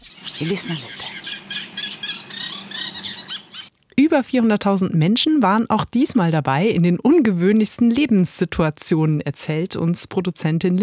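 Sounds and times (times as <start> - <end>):
reed warbler singing scratchy chattering notes: 0.0 - 3.7
speech: 0.4 - 1.1, 4.1 - 10.8.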